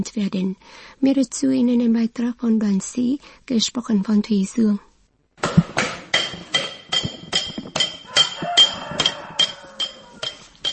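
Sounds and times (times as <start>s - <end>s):
speech: 0.0s - 4.9s
hammer tapping a chisel chasing silver in a silversmith workshop: 6.1s - 10.7s.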